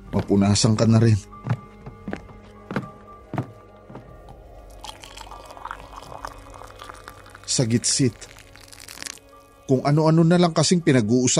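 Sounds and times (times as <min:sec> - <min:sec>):
heavy footsteps: 0:00.0 - 0:04.6
speech: 0:00.1 - 0:01.6, 0:07.6 - 0:08.4, 0:09.7 - 0:11.3
water poured into a glass: 0:04.7 - 0:09.6.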